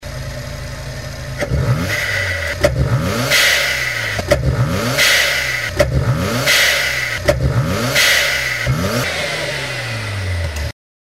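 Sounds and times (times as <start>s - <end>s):
Mazda RX7 engine intake: 1.4s - 10.7s.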